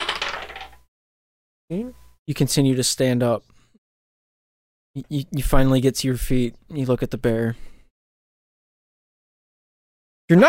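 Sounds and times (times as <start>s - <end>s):
dice rolling across a hard surface: 0.0s - 0.9s
speech: 1.7s - 3.5s, 5.0s - 7.7s, 10.3s - 10.4s.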